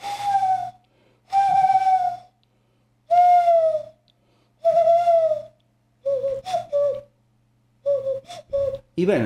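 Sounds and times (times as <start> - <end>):
person at home whistling a bird call imitation: 0.0 - 2.4, 3.1 - 4.0, 4.6 - 7.1, 7.8 - 8.9
speech: 9.0 - 9.2.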